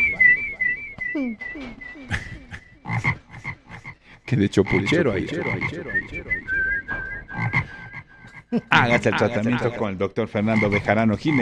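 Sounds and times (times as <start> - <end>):
thin high steady whistle: 0.0 - 2.0
laughter: 0.0 - 3.8, 4.4 - 6.4, 8.5 - 11.4
speech: 1.2 - 3.2, 4.3 - 6.6, 8.5 - 11.4
frog-like croaking: 2.1 - 11.4.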